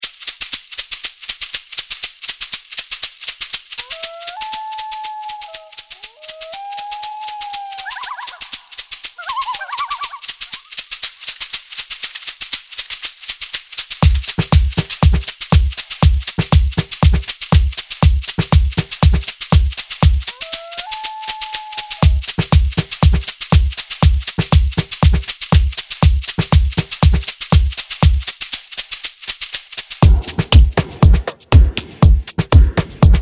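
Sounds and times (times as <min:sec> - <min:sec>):
techno loop: 0:14.0 - 0:20.3, 0:22.0 - 0:28.2, 0:30.0 - 0:33.1.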